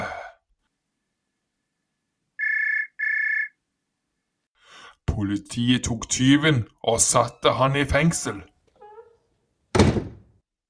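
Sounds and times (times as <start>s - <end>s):
telephone ringing with electronic trill: 2.4s - 3.6s
speech: 5.1s - 8.5s.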